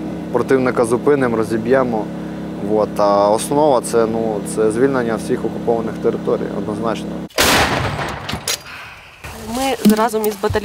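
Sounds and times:
speech: 0.3s - 7.8s, 9.6s - 10.6s
artillery fire in the Bakhmut area of Ukraine: 7.3s - 8.6s.

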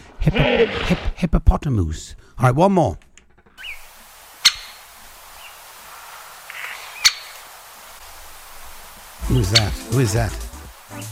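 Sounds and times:
speech: 0.2s - 3.1s, 9.3s - 11.0s
woodpecker knocking: 3.1s - 10.6s
faint chirping calls: 3.5s - 10.9s.

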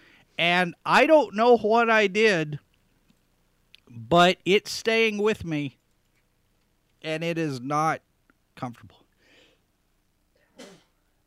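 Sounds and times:
speech: 0.4s - 2.7s, 3.9s - 5.8s, 7.0s - 9.0s
sharp sneeze: 10.6s - 11.0s.

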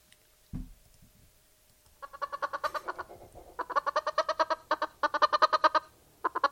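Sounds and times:
brief low thump: 0.5s - 0.8s
chicken clucking: 2.0s - 6.5s.

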